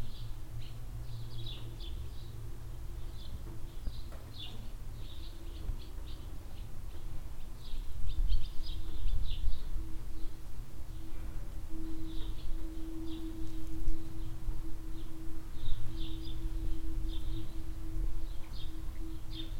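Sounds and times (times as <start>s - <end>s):
droning tone: 0.0s - 19.5s
low hum: 0.0s - 19.5s
mellow wind in a village barnyard: 0.0s - 19.5s
swallows twittering while flying under a shed roof in a barnyard: 3.0s - 19.5s.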